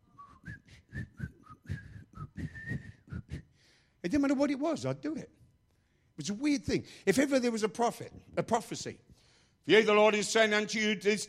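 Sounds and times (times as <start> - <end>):
person whistling a short bouncy tune: 0.0 - 3.6
speech: 4.0 - 5.4, 6.2 - 9.0, 9.6 - 11.2.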